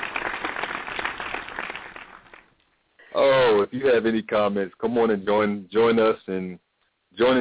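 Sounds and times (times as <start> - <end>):
applause: 0.0 - 2.6
speech: 3.2 - 6.6, 7.2 - 7.4.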